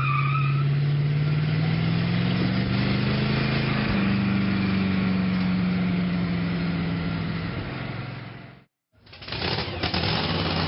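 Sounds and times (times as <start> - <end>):
car tires squealing: 0.0 - 4.9
Mad Max-style car engine revving while driven through zombies: 0.6 - 8.7, 9.3 - 10.6.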